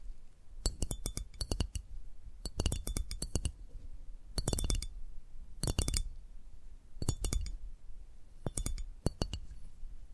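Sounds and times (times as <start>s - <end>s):
faint low hum: 0.0s - 10.1s
bright glassy tapping clinks: 0.6s - 1.8s, 2.4s - 3.6s, 4.4s - 4.9s, 5.6s - 6.1s, 7.0s - 7.6s, 8.5s - 9.6s.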